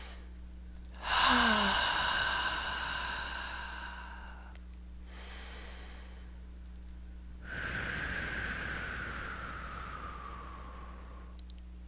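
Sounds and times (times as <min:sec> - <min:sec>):
low hum: 0:00.0 - 0:11.8
slow deep breaths in through the nose and out through the mouth: 0:01.0 - 0:06.4, 0:07.4 - 0:11.4.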